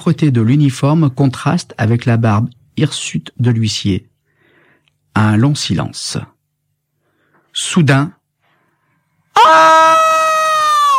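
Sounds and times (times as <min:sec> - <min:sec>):
speech: 0:00.0 - 0:04.1, 0:05.2 - 0:06.4, 0:07.6 - 0:08.2, 0:09.4 - 0:10.0
person screaming for help from other rooms of a house: 0:09.4 - 0:10.9.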